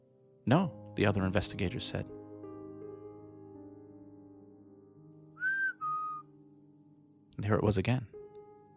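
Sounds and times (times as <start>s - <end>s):
speech: 0.5s - 2.2s, 7.4s - 8.2s
whistled notes: 5.4s - 6.3s.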